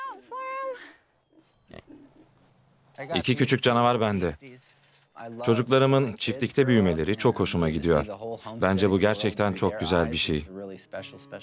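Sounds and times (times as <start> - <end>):
pig squealing on a farm: 1.7 - 2.3
pigs grunting on a farm: 1.7 - 2.4
speech: 3.0 - 11.4.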